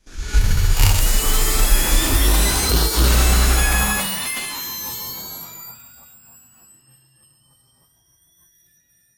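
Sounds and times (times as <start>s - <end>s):
robot mechanical jump: 0.4s - 4.1s.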